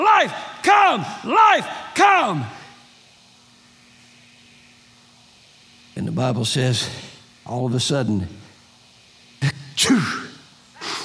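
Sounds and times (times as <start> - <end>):
speech: 0.2 - 2.6, 6.0 - 8.4, 9.4 - 10.3
person imitating a sneeze: 9.4 - 11.0.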